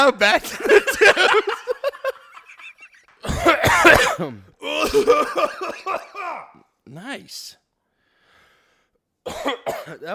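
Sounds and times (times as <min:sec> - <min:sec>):
speech: 0:00.0 - 0:01.6, 0:04.0 - 0:07.6, 0:09.2 - 0:10.1
laughter: 0:00.4 - 0:03.2
raspy cough: 0:02.9 - 0:06.7, 0:09.2 - 0:10.1.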